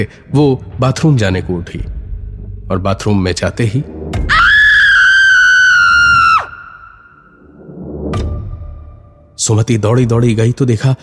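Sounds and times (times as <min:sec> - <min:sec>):
speech: 0:00.0 - 0:02.0, 0:02.7 - 0:04.0, 0:09.4 - 0:11.0
woman screaming: 0:04.3 - 0:07.2.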